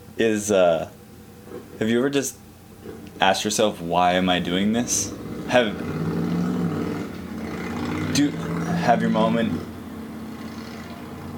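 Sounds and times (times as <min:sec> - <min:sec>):
speech: 0:00.2 - 0:06.0, 0:08.2 - 0:09.7
motorcycle engine idling and revving: 0:02.8 - 0:11.3.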